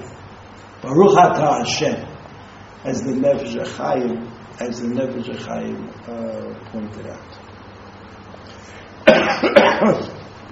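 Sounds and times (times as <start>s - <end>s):
speech: 0.8s - 2.1s, 2.8s - 7.4s, 9.1s - 10.2s
person coughing: 9.0s - 10.2s.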